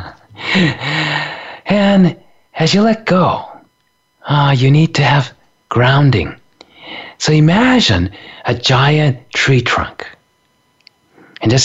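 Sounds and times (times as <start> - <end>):
laughter: 0.0 - 1.2
long deep breath drawn in close to the microphone: 0.3 - 1.7
speech: 0.5 - 3.5, 4.2 - 10.2, 11.4 - 11.6.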